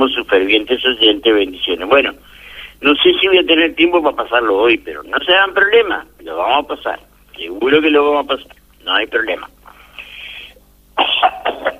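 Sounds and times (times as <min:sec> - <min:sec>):
speech: 0:00.0 - 0:09.6
person coughing: 0:11.0 - 0:11.7.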